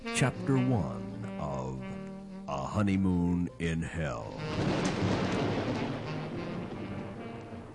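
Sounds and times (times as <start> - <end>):
speech: 0.2 - 1.1, 2.8 - 5.2
steady roar of heavy rain: 4.3 - 7.7
deep rolling rumble of thunder: 4.4 - 7.7.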